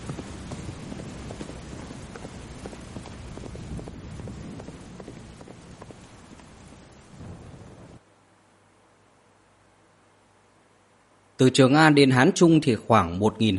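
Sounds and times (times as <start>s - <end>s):
horse galloping on a muddy road: 0.0s - 8.0s
low thunder rumble: 0.0s - 8.1s
rain on a stormy night: 0.0s - 11.4s
speech: 11.4s - 13.5s.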